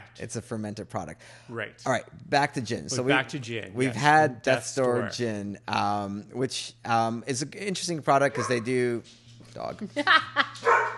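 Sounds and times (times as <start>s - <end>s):
speech: 0.2s - 10.7s
dog barking and yipping: 8.4s - 8.7s, 10.6s - 10.9s.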